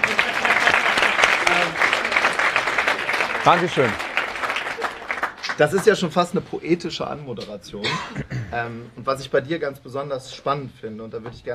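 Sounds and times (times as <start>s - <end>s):
room full of people clapping: 0.0s - 6.3s
speech: 3.4s - 4.1s, 5.6s - 11.5s.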